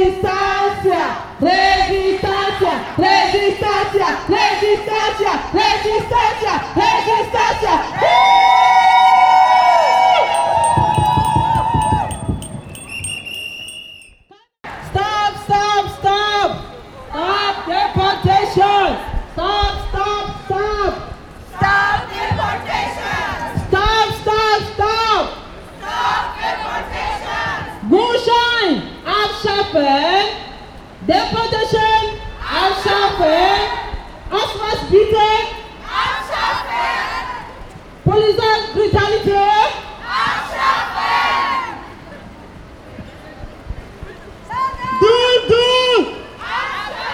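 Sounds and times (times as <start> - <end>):
mixed street noise: 0.0 - 47.1
crowd of demonstrators chanting slogans in unison on a feminist march: 0.8 - 8.2, 14.6 - 15.6, 21.4 - 24.9, 25.6 - 27.9, 35.7 - 37.6, 39.9 - 42.0, 46.3 - 47.1.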